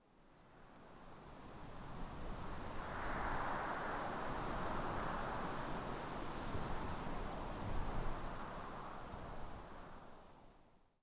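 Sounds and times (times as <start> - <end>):
wind: 0.0 - 11.0.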